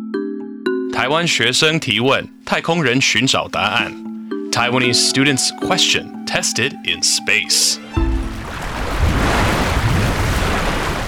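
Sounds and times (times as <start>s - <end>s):
speech: 1.0s - 8.2s
swirling vortex of water or air roaring: 8.0s - 11.0s.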